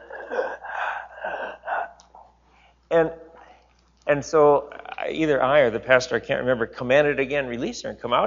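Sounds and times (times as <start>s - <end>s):
person imitating a woman gasping for breath: 0.0s - 2.8s
speech: 2.9s - 3.2s, 4.1s - 8.2s.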